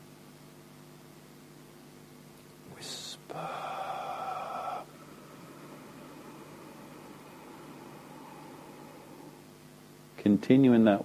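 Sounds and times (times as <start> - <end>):
steady rush of air through the nostrils completing the out-breath: 2.8 - 9.6
breathy aspirated exhale through the mouth in a breathing exercise: 2.9 - 9.6
speech: 10.2 - 11.0.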